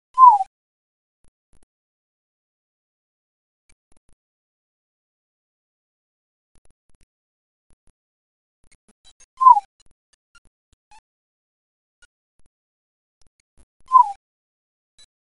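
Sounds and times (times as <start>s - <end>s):
collared scops owl calling: 0.2s - 0.5s, 13.9s - 14.2s.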